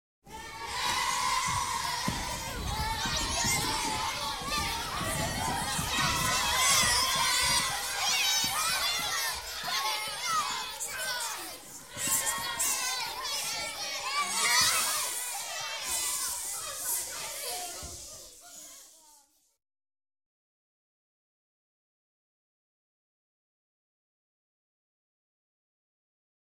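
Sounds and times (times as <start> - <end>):
hysterical children in a class: 0.3 - 18.1.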